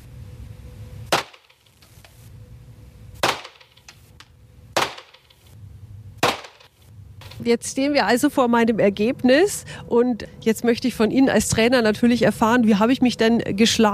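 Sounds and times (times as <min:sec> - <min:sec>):
low rumble: 0:00.0 - 0:13.9
gunshots at a shooting range: 0:01.1 - 0:01.6, 0:03.2 - 0:03.8, 0:04.8 - 0:05.4, 0:06.2 - 0:06.7
speech: 0:07.4 - 0:13.9.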